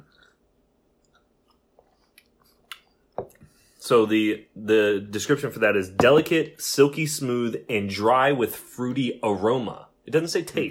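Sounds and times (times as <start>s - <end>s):
person sipping sake: 0.0s - 0.4s, 1.0s - 3.6s
speech: 3.8s - 10.6s.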